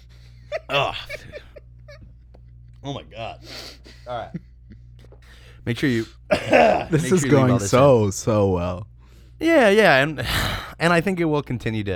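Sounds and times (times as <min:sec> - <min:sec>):
laughter: 0:00.4 - 0:02.5, 0:03.8 - 0:05.2, 0:05.9 - 0:07.9
speech: 0:00.7 - 0:01.1, 0:02.8 - 0:04.5, 0:05.6 - 0:11.9
person burping: 0:00.7 - 0:01.2, 0:06.3 - 0:07.0.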